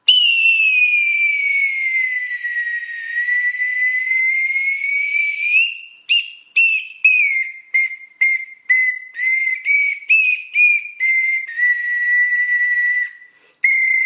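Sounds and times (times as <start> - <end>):
mini bamboo lotus flute: 0.0 - 14.0.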